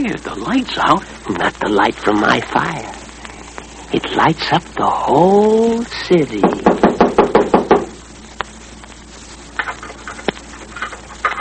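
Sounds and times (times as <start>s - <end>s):
speech: 0.0s - 3.0s, 3.9s - 6.8s
firm knocks on a door: 6.4s - 8.0s.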